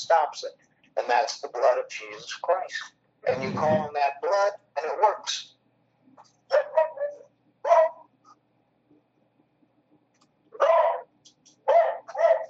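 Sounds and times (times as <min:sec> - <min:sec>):
speech: 0:00.0 - 0:05.5
dog barking: 0:06.5 - 0:08.1, 0:10.6 - 0:12.4.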